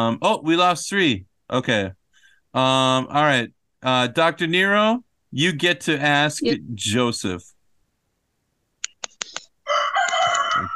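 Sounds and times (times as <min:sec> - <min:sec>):
speech: 0:00.0 - 0:07.5
rooster crowing: 0:09.7 - 0:10.7.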